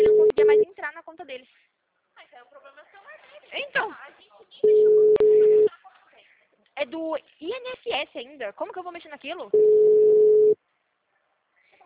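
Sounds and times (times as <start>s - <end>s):
telephone tone while a call is being placed: 0.0s - 0.6s, 4.6s - 5.7s, 9.6s - 10.6s
speech: 7.8s - 10.5s.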